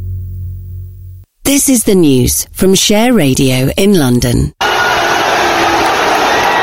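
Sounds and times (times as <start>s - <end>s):
speech: 1.5s - 4.6s
crowd cheering at a World Cup football match: 4.6s - 6.6s.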